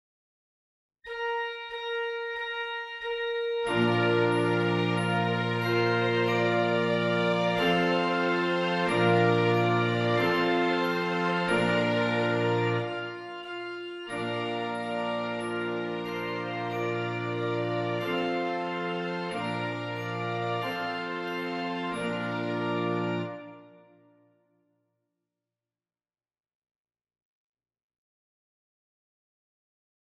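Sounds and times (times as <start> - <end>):
horns playing in fifths: 1.1 - 23.9.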